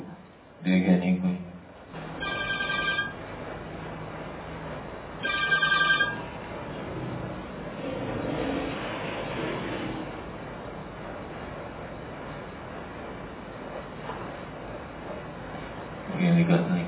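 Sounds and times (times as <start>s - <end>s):
steady murmur of room noise: 0.0s - 16.8s
speech: 0.6s - 1.2s
musical mobile phone ringtone chiming: 2.2s - 3.2s, 5.2s - 6.2s.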